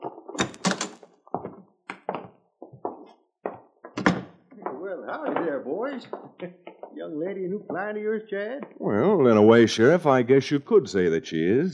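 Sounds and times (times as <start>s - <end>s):
door being handled and opened with hollow thunks and knocks: 0.4s - 4.4s
speech: 4.9s - 11.7s.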